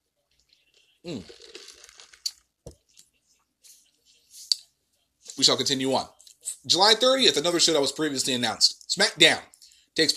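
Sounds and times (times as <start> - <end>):
person sipping a drink with wet slurping: 0.3 - 3.0
speech: 1.0 - 1.5, 5.4 - 10.1.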